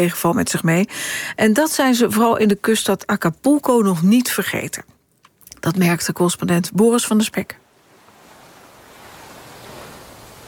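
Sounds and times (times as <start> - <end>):
speech: 0.0 - 5.0, 5.6 - 7.6
ocean waves breaking on a sandy beach: 7.6 - 10.4.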